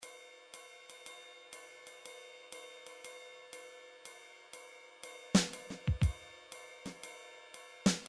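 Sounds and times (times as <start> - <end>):
simple swing beat on MIDI drums: 5.4 - 6.2.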